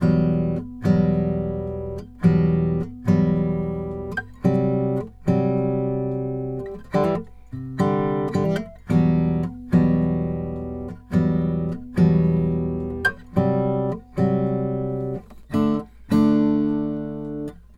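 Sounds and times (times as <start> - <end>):
country guitar: 0.0 - 17.7.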